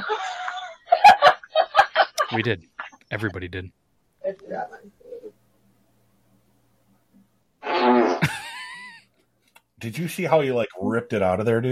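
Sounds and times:
laughter: 0.0 - 2.6, 8.2 - 9.1
speech: 2.3 - 5.0, 9.8 - 11.6
loud buzzy fart from a played video clip: 7.6 - 8.6.

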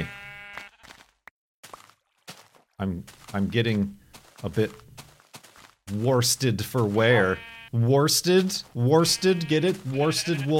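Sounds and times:
sheep bleating: 0.0 - 1.0, 6.8 - 7.9, 8.8 - 10.5
speech: 2.8 - 4.9, 5.9 - 10.5.

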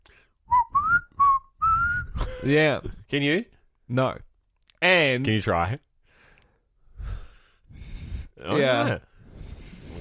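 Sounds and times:
person whistling a short tune: 0.5 - 2.2
speech: 2.4 - 5.9, 8.4 - 9.1.

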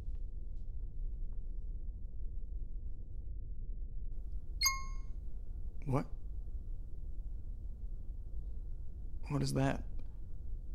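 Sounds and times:
steady low rumbling background: 0.0 - 10.7
phone notification ding: 4.6 - 5.0
speech: 5.9 - 6.2, 9.3 - 9.9.

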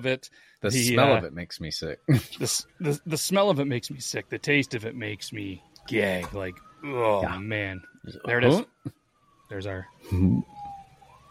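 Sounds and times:
speech: 0.0 - 10.5
emergency vehicle siren wailing: 0.7 - 1.3, 2.1 - 11.2.

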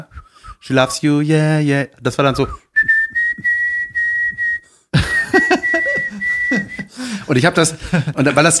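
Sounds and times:
person imitating whistling of a tune: 0.0 - 1.0, 2.3 - 7.0
speech: 0.0 - 3.0, 7.3 - 8.5
laughter: 5.0 - 8.5.

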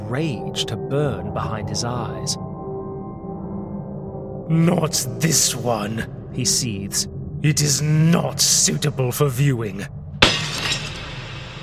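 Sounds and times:
speech: 0.1 - 2.5, 4.5 - 10.0
mirror glass smashing: 10.2 - 11.6
shattering mirror glass fragments tinkling and settling: 10.2 - 11.6.

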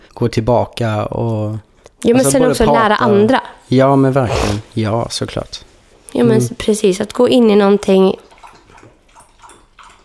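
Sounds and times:
speech: 0.2 - 8.3
pet lapping water: 7.8 - 10.0.

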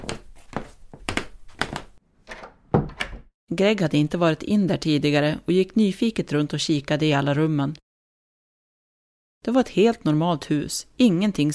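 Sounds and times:
unlocked wooden back door of a house thunking open and shut: 2.3 - 3.3
speech: 3.5 - 7.8, 9.4 - 11.5.

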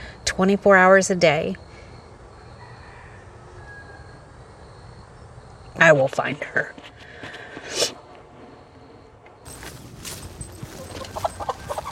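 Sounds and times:
speech: 0.4 - 1.7, 5.9 - 7.0
chickens clucking: 10.2 - 11.9
chicken squawk: 10.6 - 11.9.

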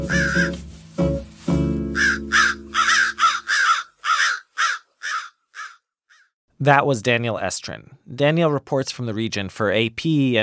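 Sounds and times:
crows cawing: 0.1 - 0.6, 2.0 - 6.3
speech: 6.6 - 10.4.

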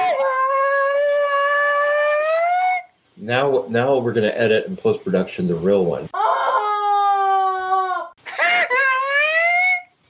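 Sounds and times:
person imitating a congested rooster: 0.0 - 3.0, 6.1 - 10.0
speech: 3.2 - 6.2
laughter: 8.2 - 9.4.

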